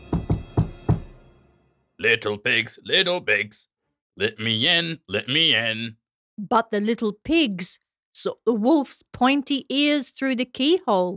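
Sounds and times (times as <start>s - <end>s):
knocking on a door: 0.0s - 1.2s
speech: 2.0s - 11.1s.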